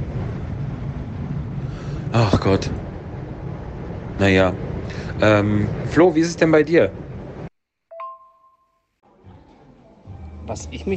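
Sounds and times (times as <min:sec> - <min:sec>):
strong wind buffeting a cable car gondola: 0:00.0 - 0:07.5
speech: 0:02.1 - 0:02.9, 0:04.2 - 0:07.0, 0:10.5 - 0:10.9.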